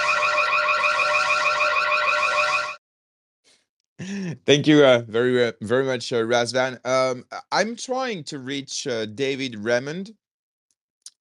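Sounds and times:
electronic alarm blaring: 0.0 - 2.8
speech: 4.5 - 10.2.

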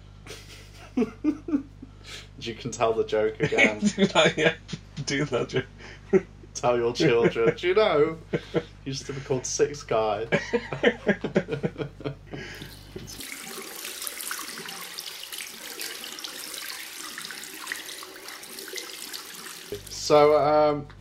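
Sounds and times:
laughter: 0.3 - 1.8, 3.3 - 6.3, 6.9 - 9.4, 10.2 - 13.2
speech: 1.0 - 1.7, 2.4 - 13.2, 20.1 - 20.9
tap water running: 12.4 - 20.5.

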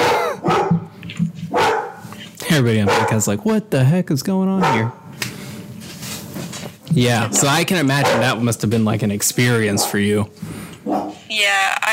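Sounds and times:
pet dog barking: 0.0 - 0.9, 1.5 - 2.0, 2.8 - 3.4, 4.6 - 5.0, 8.0 - 8.4, 9.7 - 10.1, 10.8 - 11.3
speech: 2.5 - 5.0, 6.9 - 10.6.

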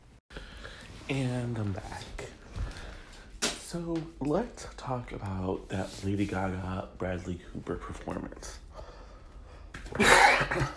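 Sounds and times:
speech: 1.1 - 2.4, 3.7 - 8.6, 10.0 - 10.7
harsh cough: 9.9 - 10.7.

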